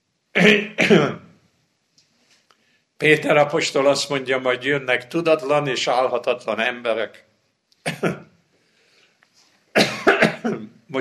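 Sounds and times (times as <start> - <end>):
speech: 0.4 - 1.2, 3.0 - 8.3
person with a troubled throat coughing sharply during a sermon: 0.4 - 1.3, 7.9 - 8.3, 9.8 - 10.8.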